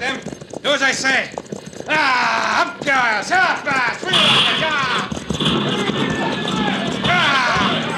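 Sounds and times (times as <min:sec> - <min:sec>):
horses' hooves galloping: 0:00.0 - 0:07.9
speech: 0:00.6 - 0:06.6
voices shouting: 0:01.9 - 0:07.9.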